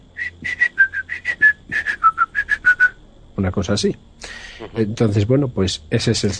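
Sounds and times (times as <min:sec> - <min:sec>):
person whistling a melody: 0:00.2 - 0:03.0
speech: 0:03.4 - 0:06.3.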